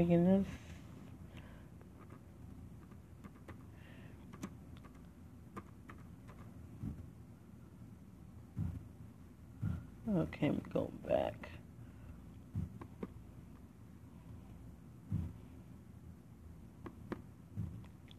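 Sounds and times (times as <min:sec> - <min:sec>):
speech: 0:00.0 - 0:00.7, 0:10.1 - 0:11.6
typing on a computer keyboard: 0:02.8 - 0:03.6, 0:04.3 - 0:06.5
heavier thumps: 0:06.7 - 0:07.2, 0:08.5 - 0:10.0, 0:12.5 - 0:13.2, 0:15.0 - 0:15.5, 0:16.9 - 0:17.9.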